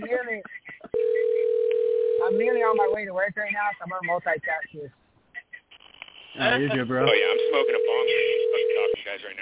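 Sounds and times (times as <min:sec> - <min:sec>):
unanswered telephone call ringing tone: 0:01.0 - 0:03.0, 0:07.2 - 0:09.0
speech: 0:03.0 - 0:05.0, 0:06.4 - 0:08.4.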